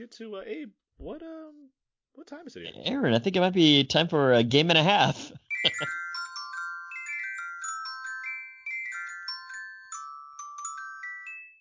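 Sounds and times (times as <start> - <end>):
speech: 0.0 - 6.0
synthesized phone ringtone melody: 5.5 - 11.6.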